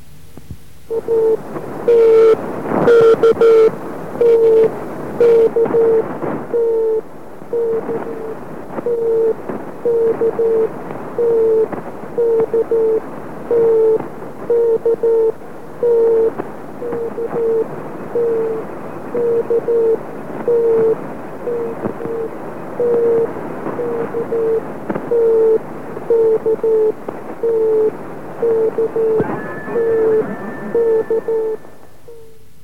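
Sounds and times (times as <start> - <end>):
constant hiss of radio static: 0.0 - 32.6
Morse code beeps in a single mid-pitched tone: 28.8 - 32.0.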